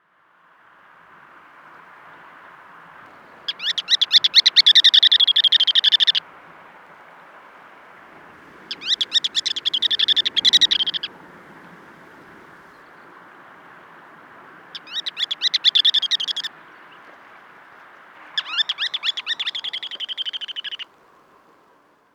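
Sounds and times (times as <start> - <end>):
ruddy turnstone calling: 3.4 - 6.2, 8.7 - 11.1, 14.7 - 17.2, 18.3 - 20.9.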